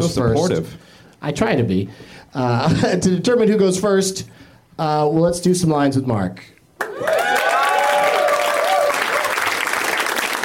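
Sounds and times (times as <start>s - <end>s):
speech: 0.0s - 7.2s
bright whoops: 6.8s - 9.4s
crowd clapping and cheering: 6.8s - 10.4s.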